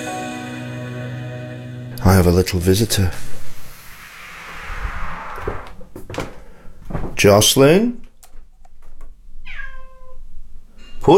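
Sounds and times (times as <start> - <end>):
speech: 2.0 - 3.4, 7.2 - 8.0
cat meowing: 9.4 - 10.3.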